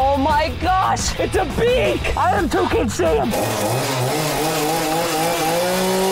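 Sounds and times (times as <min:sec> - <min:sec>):
speech: 0:00.2 - 0:05.6
chainsaw cutting through crayon wax: 0:02.6 - 0:06.1.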